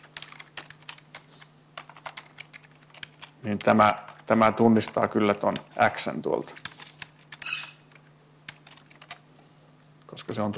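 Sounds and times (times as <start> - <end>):
quiet typing on a computer keyboard while code is written: 0.0 - 5.7, 6.6 - 9.2
speech: 3.4 - 6.6, 10.3 - 10.5.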